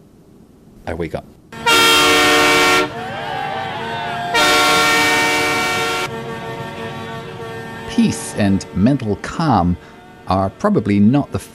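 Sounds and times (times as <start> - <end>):
speech: 0.8 - 1.4, 8.0 - 11.5
tractor-trailer air horns blaring: 1.5 - 11.5
voices: 2.8 - 11.5.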